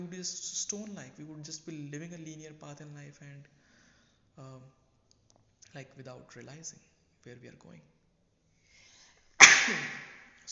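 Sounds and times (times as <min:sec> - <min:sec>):
speech: 0:00.1 - 0:03.6, 0:04.4 - 0:04.8, 0:05.7 - 0:08.0, 0:09.6 - 0:10.5
loud sudden sneeze: 0:09.4 - 0:10.3.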